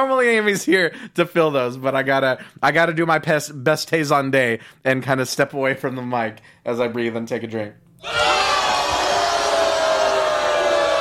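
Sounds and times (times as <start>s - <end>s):
speech: 0.0s - 8.4s
studio audience cheering and shouting: 8.0s - 10.9s.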